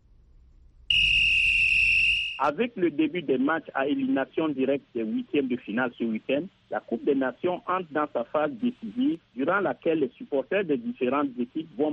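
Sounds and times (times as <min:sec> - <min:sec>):
referee's whistle long shrill blast: 0:00.9 - 0:02.5
speech: 0:02.4 - 0:11.9.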